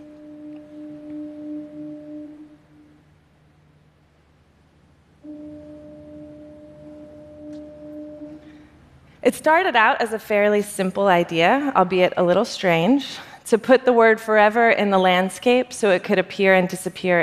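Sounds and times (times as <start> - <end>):
low foghorn warning blasts in fog: 0.0 - 3.3, 5.2 - 9.2
speech: 9.2 - 17.2.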